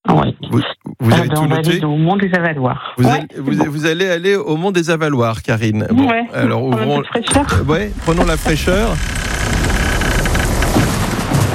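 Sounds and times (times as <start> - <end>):
speech: 0.5 - 9.6
low thunder rumbling: 7.4 - 11.5
heavy rain falling in a thunderstorm: 7.6 - 11.5.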